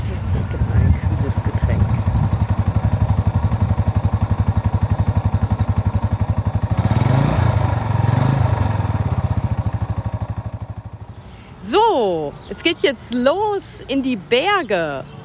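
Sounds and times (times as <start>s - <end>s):
motorcycle engine running: 0.2s - 11.3s
speech: 12.0s - 15.2s.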